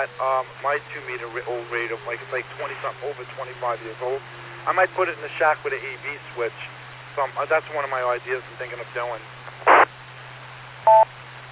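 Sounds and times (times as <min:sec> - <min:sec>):
speech: 0:00.0 - 0:09.4, 0:10.9 - 0:11.2
faint steady hum: 0:00.0 - 0:11.5
mobile phone beeping a meeting reminder: 0:09.7 - 0:09.9, 0:10.9 - 0:11.1.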